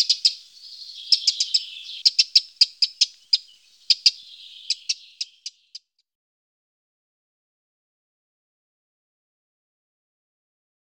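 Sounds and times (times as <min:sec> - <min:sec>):
Eurasian wren giving sharp high ticking notes: 0:00.0 - 0:05.9
faint twittering: 0:00.0 - 0:05.9.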